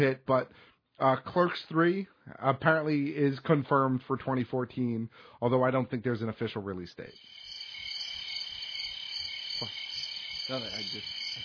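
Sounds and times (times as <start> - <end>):
speech: 0.0 - 7.4, 9.6 - 9.8, 10.5 - 11.4
chorus of crickets chirping: 7.1 - 11.4
low croaking calls: 7.1 - 11.4.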